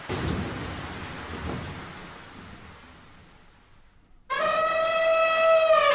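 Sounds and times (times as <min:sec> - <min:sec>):
rolling thunder in a thunderstorm: 0:00.0 - 0:03.4
heavy rain in a thunderstorm: 0:00.0 - 0:05.9.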